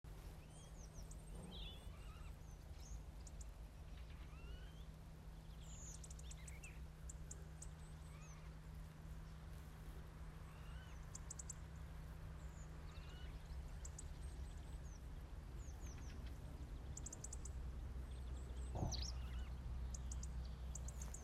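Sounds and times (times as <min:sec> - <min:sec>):
other birds calling: 0:00.1 - 0:21.2.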